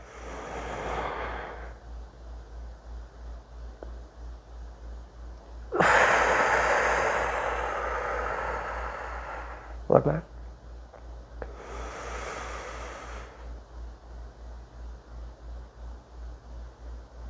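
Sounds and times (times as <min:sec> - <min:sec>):
deep breathing in a 4-7-8 breathing exercise: 0:00.0 - 0:02.0, 0:05.7 - 0:09.9, 0:11.4 - 0:13.6
speech: 0:10.0 - 0:10.3.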